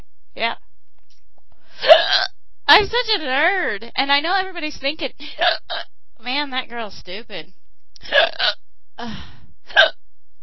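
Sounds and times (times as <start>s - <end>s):
speech: 0.4s - 0.6s, 2.7s - 10.4s
hiccups: 1.8s - 2.3s, 5.4s - 5.9s, 8.0s - 8.6s, 9.7s - 10.0s.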